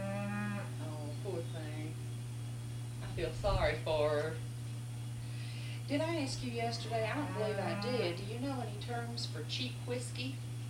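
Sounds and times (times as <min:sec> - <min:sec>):
cow mooing for her calf: 0:00.0 - 0:00.8, 0:06.6 - 0:08.3
low hum: 0:00.0 - 0:10.6
speech: 0:01.3 - 0:02.1, 0:03.2 - 0:04.5, 0:05.9 - 0:10.5.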